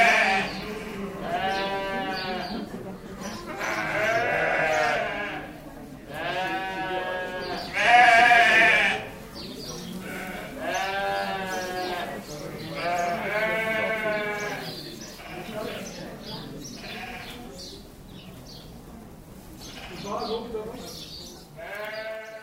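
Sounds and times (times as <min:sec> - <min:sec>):
sheep bleating in a lambing shed: 0:00.0 - 0:02.7, 0:03.5 - 0:05.5, 0:06.2 - 0:09.1, 0:10.0 - 0:12.1, 0:12.7 - 0:15.6, 0:16.8 - 0:17.4, 0:21.6 - 0:22.4.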